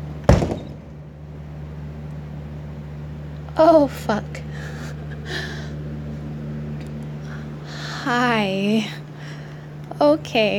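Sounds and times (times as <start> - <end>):
faint steady hum: 0.0 - 10.5
unlocked back door opening with heavy clunk: 0.2 - 1.2
speech: 3.6 - 4.4, 8.1 - 9.0, 10.0 - 10.5.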